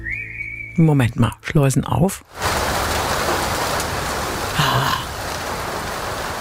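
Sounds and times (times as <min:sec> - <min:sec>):
speech: 0:00.8 - 0:02.8
heavy rain drumming on a car roof: 0:02.2 - 0:06.3.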